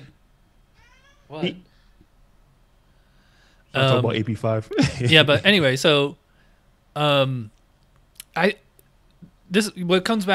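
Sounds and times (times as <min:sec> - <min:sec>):
faint steady hum: 0:00.0 - 0:10.3
cat meowing: 0:00.8 - 0:01.6
speech: 0:01.3 - 0:01.7, 0:03.7 - 0:06.2, 0:07.0 - 0:07.6, 0:08.4 - 0:08.6, 0:09.5 - 0:10.3.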